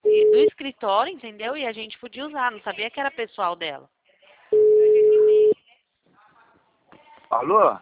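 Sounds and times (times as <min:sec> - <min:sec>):
speech: 0:00.8 - 0:04.7, 0:07.3 - 0:07.8
telephone busy tone after a dropped call: 0:04.6 - 0:05.6.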